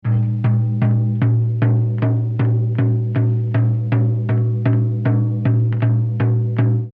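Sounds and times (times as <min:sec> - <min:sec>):
drum pattern: 0:00.0 - 0:06.9.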